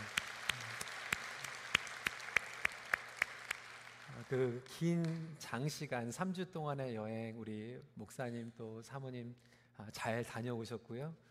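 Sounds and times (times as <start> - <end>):
church audience applauding: 0.0 - 5.2
speech: 4.3 - 11.3.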